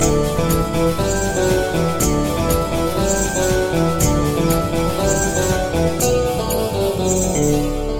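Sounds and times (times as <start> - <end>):
guitar ringtone: 0.0 - 7.9.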